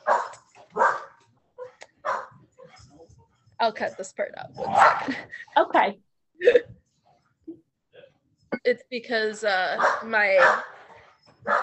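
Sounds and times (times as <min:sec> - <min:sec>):
dog barking: 0:00.0 - 0:02.8, 0:04.6 - 0:05.1, 0:09.8 - 0:10.8, 0:11.4 - 0:11.6
dog yipping softly: 0:00.0 - 0:02.8, 0:09.8 - 0:11.6
speech: 0:03.6 - 0:06.6, 0:08.6 - 0:10.7.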